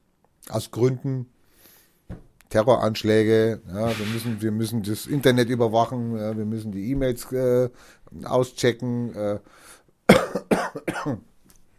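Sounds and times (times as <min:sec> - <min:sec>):
speech: 0:00.4 - 0:01.4, 0:02.1 - 0:11.3
short quiet breath: 0:01.4 - 0:02.1, 0:07.8 - 0:08.1, 0:09.5 - 0:09.9
heavy harsh cough: 0:10.1 - 0:11.3.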